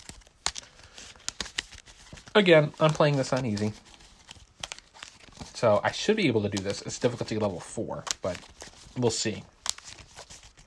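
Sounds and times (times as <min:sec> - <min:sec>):
deck of playing cards shuffling: 0:00.0 - 0:10.6
speech: 0:02.4 - 0:03.9, 0:05.6 - 0:09.6.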